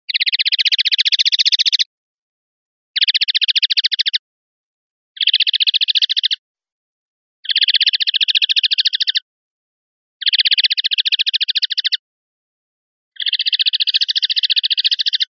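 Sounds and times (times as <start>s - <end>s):
common linnet singing: 0.1s - 1.9s, 3.0s - 4.2s, 5.2s - 6.4s, 7.4s - 9.3s, 10.2s - 12.0s, 13.2s - 15.3s.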